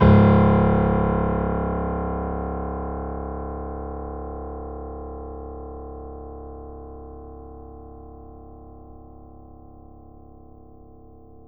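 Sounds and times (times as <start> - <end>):
grand piano C#0 note: 0.0 - 3.3.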